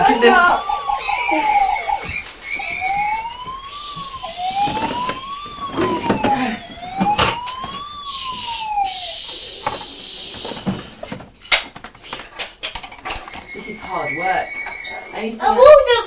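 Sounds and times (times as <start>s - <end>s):
police car siren: 0.0s - 11.1s, 13.2s - 15.8s
speech: 0.2s - 0.7s.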